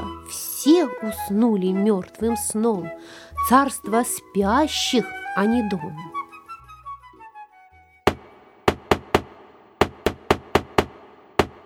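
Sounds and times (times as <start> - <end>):
speech: 0.3 - 6.2
crow's beak knocking on a door: 8.1 - 11.6.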